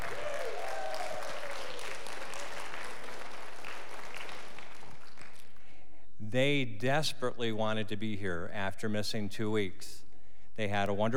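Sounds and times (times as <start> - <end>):
audience standing and clapping: 0.0 - 5.8
speech: 6.3 - 10.0, 10.6 - 11.1.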